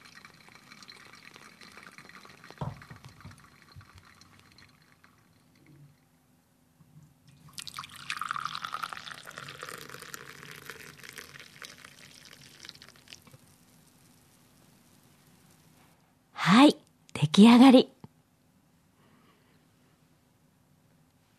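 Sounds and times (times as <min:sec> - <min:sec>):
hot water poured gently in circles: 0:00.0 - 0:06.1, 0:07.3 - 0:15.8
speech: 0:17.4 - 0:17.9.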